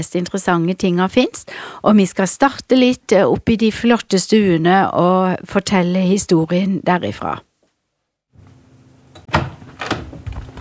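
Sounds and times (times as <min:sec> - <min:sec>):
speech: 0:00.0 - 0:07.5
museum door opening and closing: 0:09.1 - 0:10.6
sharp wooden knocks and thuds: 0:09.3 - 0:10.6.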